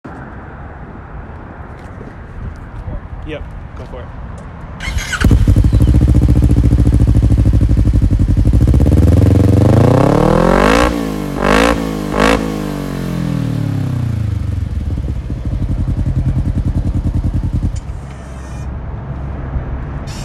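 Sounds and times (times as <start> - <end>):
Kawasaki KRX exhaust: 4.8 - 18.6.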